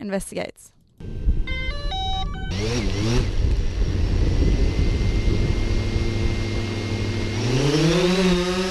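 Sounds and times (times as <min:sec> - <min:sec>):
remote control drone buzzing in flight with high whine: 0:01.0 - 0:08.7
electronic beeps: 0:01.4 - 0:02.8.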